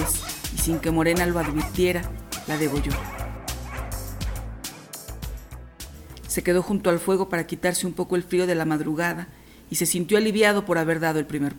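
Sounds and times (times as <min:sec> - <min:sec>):
dogs barking and yelping: 0:00.0 - 0:04.9
speech: 0:00.7 - 0:03.2, 0:06.4 - 0:11.5.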